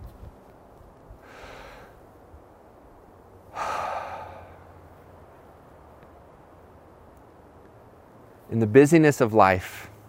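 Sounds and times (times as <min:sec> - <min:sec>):
deep breath: 0:01.2 - 0:02.0, 0:03.5 - 0:04.7
speech: 0:08.5 - 0:09.9.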